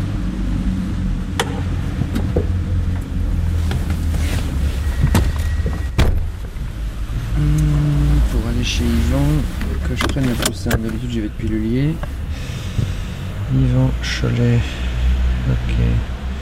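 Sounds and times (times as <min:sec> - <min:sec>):
car engine humming as the vehicle pulls away from beneath a station: 0:00.0 - 0:16.4
sharp clicks and knocks: 0:01.3 - 0:03.1, 0:09.6 - 0:11.0
speech: 0:10.8 - 0:12.2, 0:13.5 - 0:14.8.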